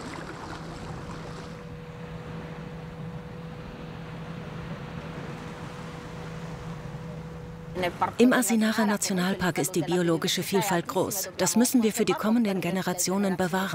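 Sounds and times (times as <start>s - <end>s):
water splashing: 0.0s - 9.4s
boat engine droning with a constant low hum: 0.0s - 13.7s
wind over open water: 0.0s - 13.7s
speech: 7.8s - 13.7s.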